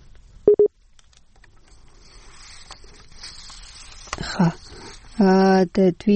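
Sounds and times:
electronic telephone tones after a call is cut off: 0:00.5 - 0:00.7
speech: 0:04.4 - 0:04.6, 0:05.2 - 0:06.1.

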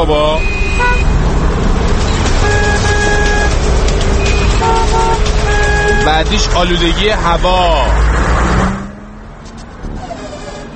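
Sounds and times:
city car horns honking: 0:00.0 - 0:01.2, 0:02.0 - 0:07.6, 0:09.8 - 0:10.7
city traffic rumble of engines and road noise: 0:00.0 - 0:10.7
speech: 0:00.1 - 0:00.6, 0:06.1 - 0:08.2.

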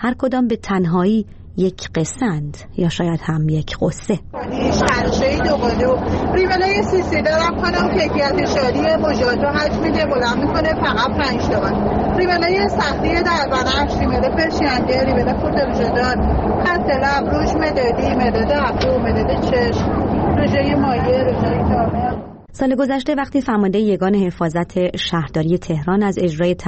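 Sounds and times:
speech: 0:00.0 - 0:26.6
steady rumble of vehicle noise in a Tehran Metro station: 0:03.9 - 0:22.5
overlapping crowd chatter in a Tehran Metro station: 0:04.4 - 0:22.4.

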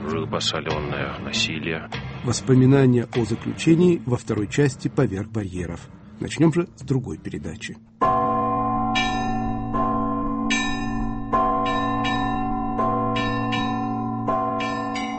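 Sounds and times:
speech: 0:00.3 - 0:08.1
church bells pealing: 0:08.0 - 0:15.1.

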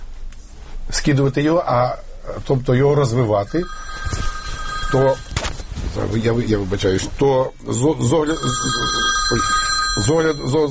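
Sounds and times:
speech: 0:00.9 - 0:04.3, 0:04.9 - 0:05.3, 0:06.0 - 0:10.6
telephone ringing: 0:03.1 - 0:06.3, 0:07.8 - 0:10.6.

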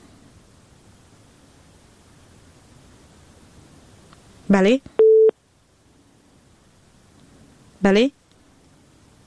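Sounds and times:
speech: 0:04.5 - 0:05.0, 0:07.8 - 0:08.2
telephone busy tone after a phone call is cut off: 0:05.0 - 0:05.3.

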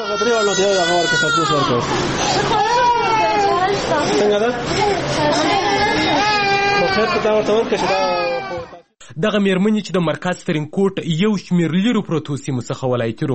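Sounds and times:
sick babies with diarrhoea crying in a hospital women's ward: 0:00.0 - 0:03.8, 0:05.4 - 0:08.8
speech: 0:00.1 - 0:02.9, 0:03.7 - 0:06.3, 0:06.9 - 0:08.3, 0:09.2 - 0:13.3.

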